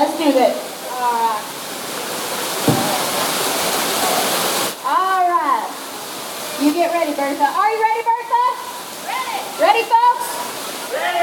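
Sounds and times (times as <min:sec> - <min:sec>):
indoor waterfall roaring: 0:00.0 - 0:11.2
speech: 0:00.2 - 0:01.2, 0:06.8 - 0:08.1, 0:09.6 - 0:10.3
dull thump: 0:02.6 - 0:03.2.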